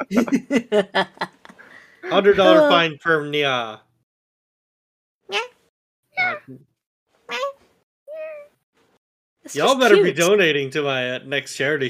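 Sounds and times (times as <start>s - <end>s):
laughter: 0.0s - 2.8s, 9.6s - 10.4s
speech: 0.1s - 1.2s, 2.2s - 3.9s, 9.5s - 11.8s
person imitating cat meows: 2.4s - 2.8s, 6.2s - 6.6s.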